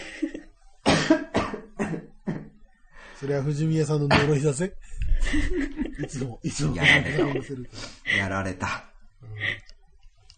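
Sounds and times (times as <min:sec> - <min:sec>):
harsh coughs after choking on a drink: 0:00.8 - 0:02.6
speech: 0:03.2 - 0:08.8
laughter: 0:05.0 - 0:08.7.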